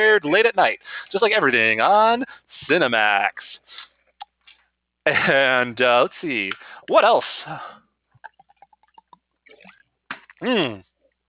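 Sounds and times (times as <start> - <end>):
speech: 0.0 - 3.6, 5.0 - 7.8, 10.4 - 10.9
person drinking water: 8.1 - 10.4.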